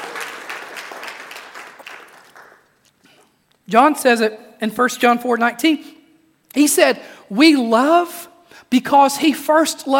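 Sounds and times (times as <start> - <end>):
audience clapping: 0.0 - 3.1
speech: 3.7 - 6.0, 6.6 - 9.9.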